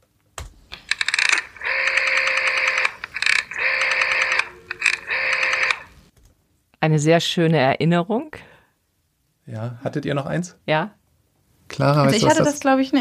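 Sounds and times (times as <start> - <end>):
rotary telephone dial turned and released: 0.9 - 5.9
speech: 6.8 - 8.5, 9.5 - 11.0, 11.8 - 12.9.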